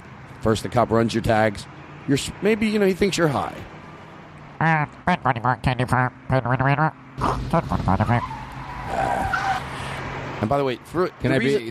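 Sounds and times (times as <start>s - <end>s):
speech: 0.4s - 3.8s, 4.6s - 8.3s, 10.4s - 11.7s
person vocally imitating car revving and tire screech: 4.5s - 9.7s.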